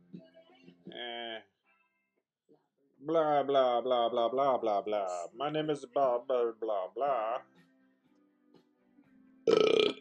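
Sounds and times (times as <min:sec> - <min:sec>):
speech: 0:01.0 - 0:01.5, 0:03.0 - 0:07.6
loud rough gurgling belch: 0:09.5 - 0:09.9.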